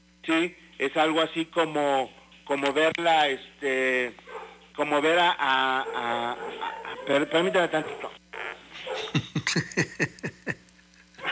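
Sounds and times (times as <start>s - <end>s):
speech: 0.3s - 4.2s, 4.8s - 8.2s
dogs barking: 4.2s - 9.3s, 11.2s - 11.3s
laughter: 8.9s - 10.8s.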